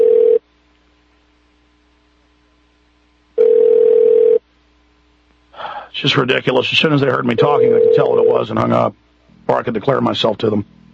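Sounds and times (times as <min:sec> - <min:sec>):
telephone ringing unanswered on a call to a government office: 0:00.0 - 0:00.4, 0:03.4 - 0:04.4, 0:07.3 - 0:08.5
speech: 0:06.0 - 0:10.8.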